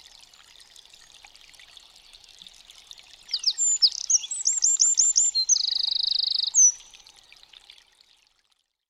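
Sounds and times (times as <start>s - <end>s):
Eurasian wren singing: 3.3s - 6.9s.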